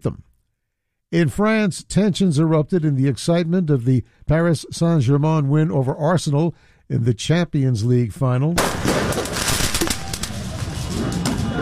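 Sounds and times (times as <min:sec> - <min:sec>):
speech: 0:00.0 - 0:00.3, 0:01.1 - 0:09.5
fireworks crackling and popping at a street celebration by the Eiffel Tower in Paris: 0:08.6 - 0:11.5
outdoor crowd noise at a street celebration by the Eiffel Tower in Paris: 0:09.8 - 0:11.5.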